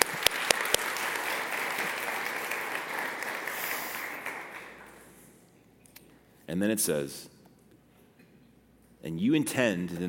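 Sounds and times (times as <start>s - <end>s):
audience clapping: 0.0s - 5.2s
speech: 6.5s - 7.3s, 9.1s - 10.0s.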